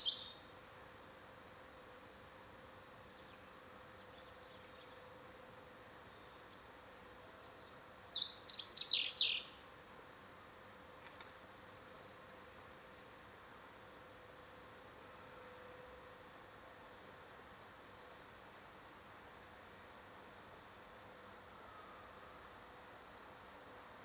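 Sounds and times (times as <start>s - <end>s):
European robin Erithacus rubecula singing: 0.0s - 0.5s, 2.7s - 10.7s
faint hum: 0.0s - 24.0s.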